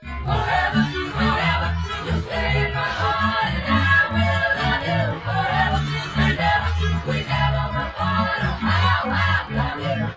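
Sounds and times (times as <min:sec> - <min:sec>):
chorus singing: 0:00.0 - 0:10.1.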